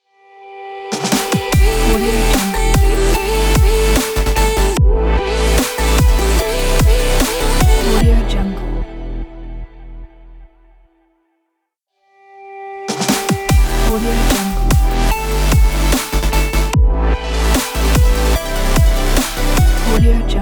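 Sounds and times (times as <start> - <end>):
energetic future bass logo music: 1.0 - 8.8, 12.9 - 20.3.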